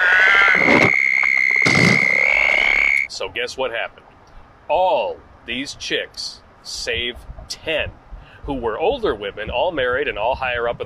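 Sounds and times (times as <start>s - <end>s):
voice imitating a toad with a high thin squeak: 0.0s - 3.1s
speech: 3.2s - 4.1s, 4.7s - 10.8s.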